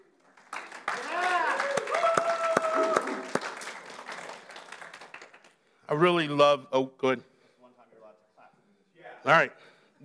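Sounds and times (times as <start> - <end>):
audience at a worship service applauding: 0.2 - 5.6
sharp louder claps: 0.4 - 5.5
whoops and cheering voices: 0.9 - 4.2
speech: 5.9 - 7.3, 9.2 - 9.7.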